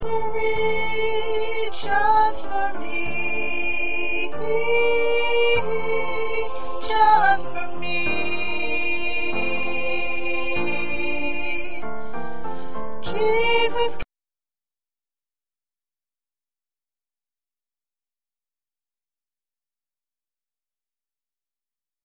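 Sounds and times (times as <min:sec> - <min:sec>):
second soprano singing in a choir: 0:00.0 - 0:14.1.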